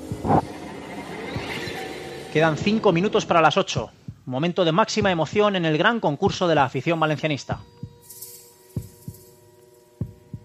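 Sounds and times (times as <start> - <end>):
heartbeat sound effect: 0.0 - 0.6, 1.3 - 1.8, 2.6 - 2.9, 3.7 - 5.6, 6.2 - 6.7, 7.5 - 8.0, 8.8 - 9.3, 10.0 - 10.4
speech: 0.3 - 0.5, 2.3 - 7.8.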